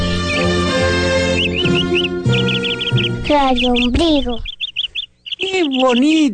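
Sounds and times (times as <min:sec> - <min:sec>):
small birds chirping: 0:00.0 - 0:06.3
sustained tonal backdrop: 0:00.0 - 0:06.3
speech: 0:03.3 - 0:04.5, 0:05.4 - 0:06.3.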